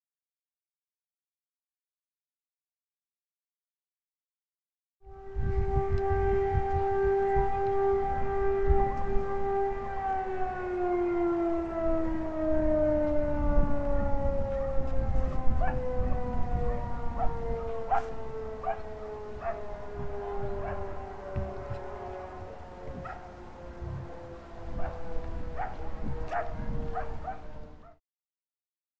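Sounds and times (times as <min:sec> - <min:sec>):
siren from a hill: 0:05.0 - 0:28.0.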